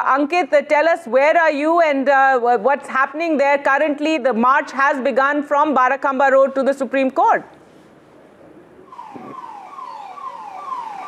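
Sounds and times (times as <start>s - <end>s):
speech: 0.0s - 7.6s
steady rumble of street noise: 8.2s - 11.0s
siren of a Rapid Action Force anti-riot vehicle blaring: 8.9s - 11.0s.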